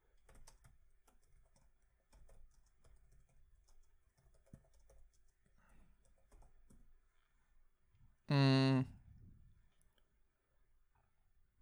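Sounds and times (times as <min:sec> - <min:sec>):
fingers typing on a computer keyboard: 0:00.0 - 0:06.8
brief loud vocal hum: 0:08.3 - 0:08.9.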